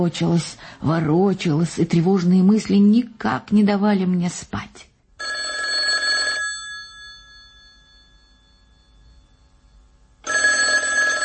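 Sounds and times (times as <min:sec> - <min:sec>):
speech: 0:00.0 - 0:04.9
metallic telephone bell ringing: 0:05.2 - 0:11.2.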